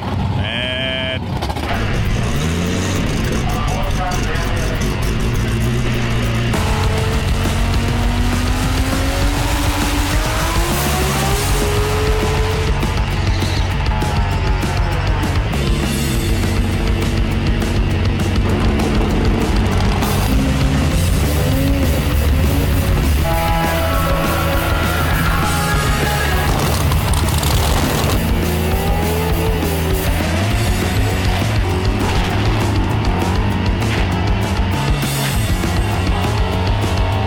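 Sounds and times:
drag racing car engines roaring at a drag racing event in Sydney: 0.0 - 37.2.

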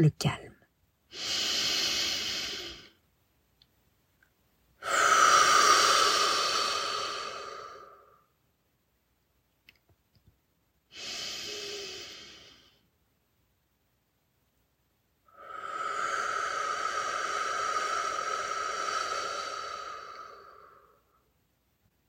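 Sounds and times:
speech: 0.0 - 0.5, 1.1 - 1.6
deep breaths in through the nose and out through the mouth: 1.1 - 3.0, 4.8 - 8.3, 10.9 - 12.9, 15.3 - 21.3.

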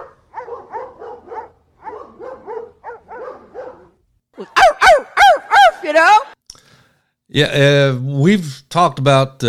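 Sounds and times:
hounds baying: 0.0 - 5.8
speech: 7.3 - 9.4.

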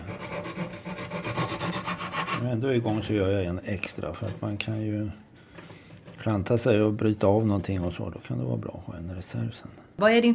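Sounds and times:
small saw cutting gingerbread pieces to size: 0.0 - 2.5
speech: 2.4 - 5.2, 6.2 - 10.3.

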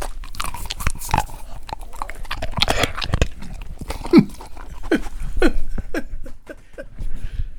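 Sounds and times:
dog crunching a hard dog biscuit: 0.0 - 5.8.

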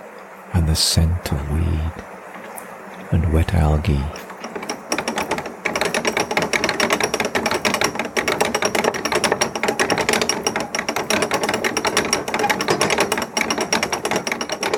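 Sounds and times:
speech: 0.7 - 2.1, 3.1 - 4.2
well-greased ratchets on canal lock gate winding gear rattling: 4.2 - 14.7.

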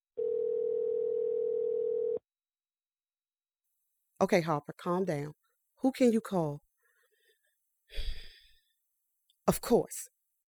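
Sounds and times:
electronic phone ringback tone: 0.2 - 2.2
speech: 4.2 - 6.6, 7.9 - 8.2, 9.5 - 10.1.

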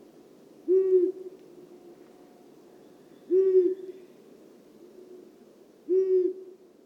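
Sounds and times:
long-eared owl hooting: 0.7 - 1.3, 3.3 - 4.1, 5.9 - 6.6.

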